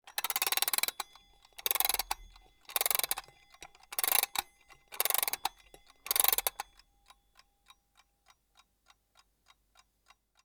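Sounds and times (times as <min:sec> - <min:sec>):
alarm clock being set: 0:00.1 - 0:06.6.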